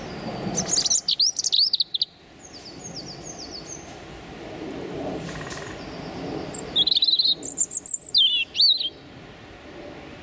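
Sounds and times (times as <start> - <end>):
male European robin Erithacus rubecula singing territorial song: 0.0 - 3.9, 5.4 - 9.1.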